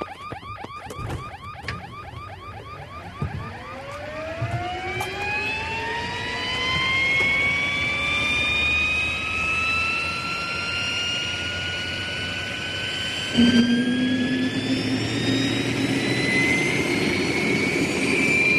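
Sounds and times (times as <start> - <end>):
search and rescue helicopter turbine engine whining as it spools up: 1.4 - 18.5
constant loud roar of helicopter engine noise: 2.9 - 18.5.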